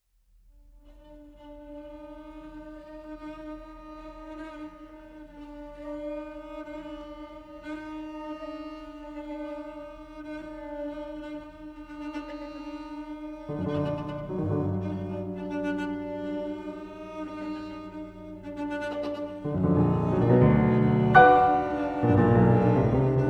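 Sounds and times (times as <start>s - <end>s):
piano quartet playing: 13.5s - 23.2s.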